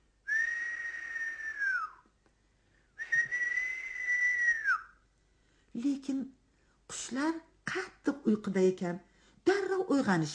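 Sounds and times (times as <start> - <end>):
soft human whistling to wake birds: 0.3 - 2.1, 3.0 - 5.0
speech: 5.8 - 6.4, 7.1 - 9.1, 9.9 - 10.3.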